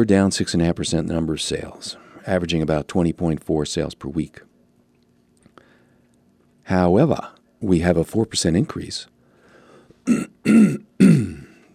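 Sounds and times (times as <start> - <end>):
speech: 0.0 - 4.5, 6.7 - 9.1, 10.0 - 11.4
person with a sore throat clearing throat: 10.0 - 11.7.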